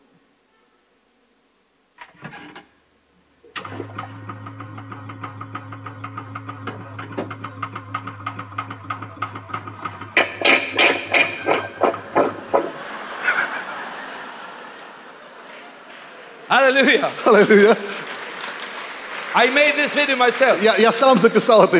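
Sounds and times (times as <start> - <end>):
small water pump humming with motor whine and rhythmic knocking: 3.5 - 12.5
laughter: 11.4 - 19.0
speech: 16.6 - 18.0, 19.4 - 21.7.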